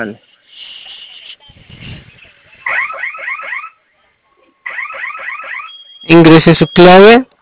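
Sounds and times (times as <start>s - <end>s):
speech: 0.0s - 0.3s, 6.1s - 7.3s
home security alarm blaring heard through a phone: 1.4s - 3.8s, 4.6s - 7.3s.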